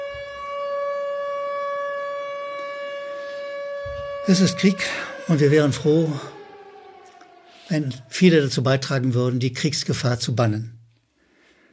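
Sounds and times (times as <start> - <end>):
civil defense siren wailing at a constant pitch: 0.0 - 9.9
faint low rumbles: 3.8 - 10.1
speech: 4.2 - 6.4, 7.7 - 10.8.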